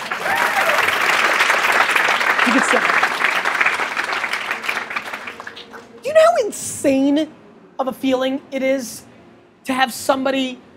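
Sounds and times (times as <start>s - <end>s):
audience applause: 0.0s - 5.9s
speech: 2.5s - 3.0s, 6.4s - 10.6s.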